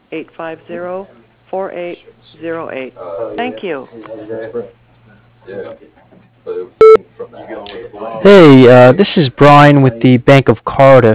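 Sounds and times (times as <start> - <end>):
low constant hum: 0.0 - 11.1
speech: 0.1 - 4.8, 5.5 - 11.1
answering machine beep: 6.8 - 7.0.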